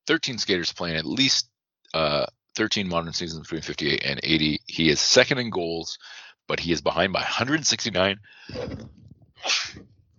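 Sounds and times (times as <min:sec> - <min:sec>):
speech: 0:00.1 - 0:09.9
sharp voiced sneeze: 0:09.4 - 0:09.8.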